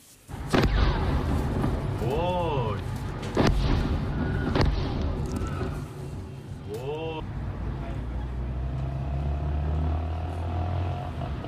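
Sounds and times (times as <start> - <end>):
low continuous city rumble: 0.0 - 11.4
heavy explosions in a city: 0.3 - 6.0.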